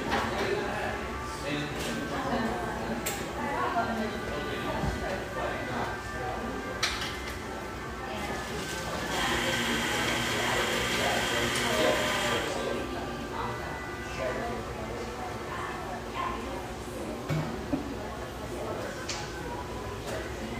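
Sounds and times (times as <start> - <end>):
overlapping chatter in a bayside coffeeshop in Tacoma Washington: 0.0 - 20.5
hissing burst of coffeeshop machine noise: 8.7 - 12.7.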